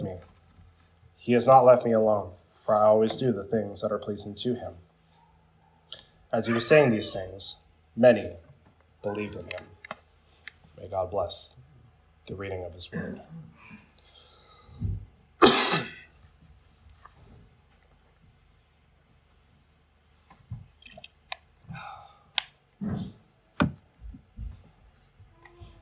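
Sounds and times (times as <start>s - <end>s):
speech: 1.2s - 4.8s, 5.9s - 8.4s, 9.0s - 9.7s, 10.8s - 11.6s, 12.3s - 13.8s
person coughing: 12.9s - 13.5s, 15.4s - 16.2s
throat noises: 22.8s - 23.3s.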